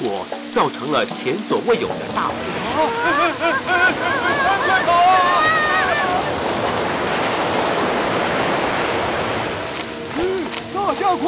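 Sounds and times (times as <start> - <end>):
speech: 0.0 - 4.4, 10.9 - 11.2
rushing floodwater roar: 0.0 - 11.2
laughter: 1.7 - 6.9
voice-like cry: 2.6 - 6.4.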